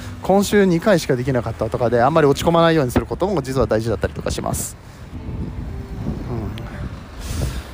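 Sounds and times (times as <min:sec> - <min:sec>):
speech: 0:00.3 - 0:05.0
strong wind buffeting the microphone: 0:02.8 - 0:07.7.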